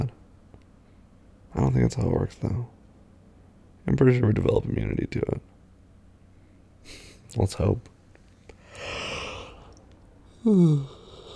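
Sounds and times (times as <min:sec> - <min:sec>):
speech: 0:01.6 - 0:02.8, 0:03.9 - 0:05.5, 0:06.8 - 0:07.9, 0:10.4 - 0:11.0
person yawning: 0:08.7 - 0:11.3.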